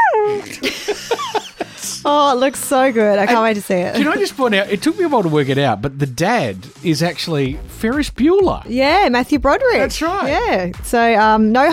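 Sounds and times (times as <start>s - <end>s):
small dog whimpering and yipping: 0.0s - 0.5s
laughter: 0.4s - 2.0s
speech: 2.1s - 11.7s.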